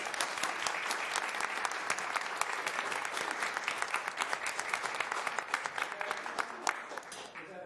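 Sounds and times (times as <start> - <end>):
audience applause: 0.0 - 7.5.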